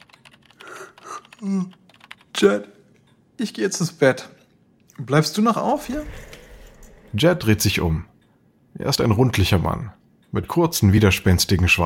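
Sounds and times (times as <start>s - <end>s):
man typing on a computer keyboard in his study: 0.0s - 2.5s
speech: 1.4s - 1.8s, 2.4s - 2.8s, 3.4s - 4.4s, 5.0s - 6.3s, 7.1s - 8.1s, 8.8s - 11.8s.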